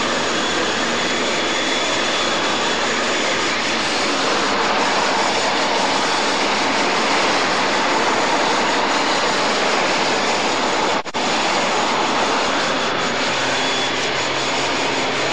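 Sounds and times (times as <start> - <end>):
locomotive engine building power hauling heavy train in West London: 0.0 - 15.3.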